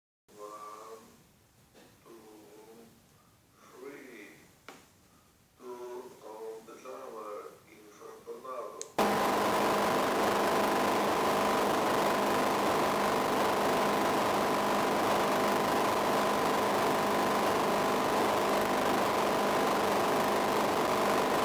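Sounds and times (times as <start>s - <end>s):
signal jammer real test at 1 m: 9.0s - 21.4s.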